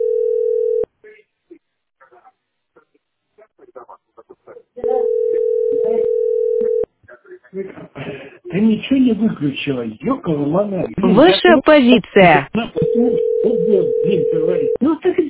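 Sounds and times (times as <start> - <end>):
telephone ringing with a steady electronic tone: 0.0 - 0.9, 4.8 - 6.8, 12.8 - 14.8
speech: 8.6 - 15.2.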